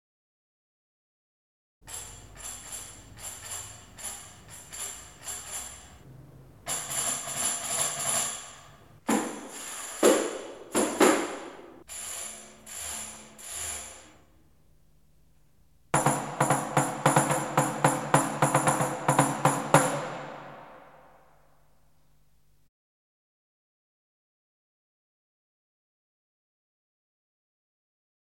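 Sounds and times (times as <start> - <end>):
tambourine: 1.8 - 6.0, 6.7 - 14.2, 16.0 - 21.6.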